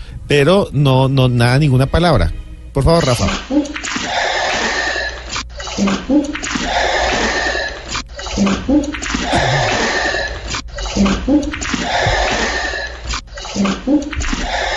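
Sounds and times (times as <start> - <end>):
speech: 0.3 - 3.6, 5.8 - 6.5, 8.4 - 9.6
water sloshing in waves: 3.1 - 14.7.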